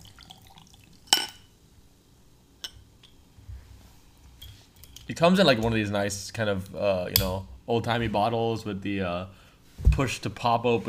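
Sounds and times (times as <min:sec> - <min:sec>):
glasses clinking: 0:00.4 - 0:01.5
speech: 0:05.1 - 0:10.8.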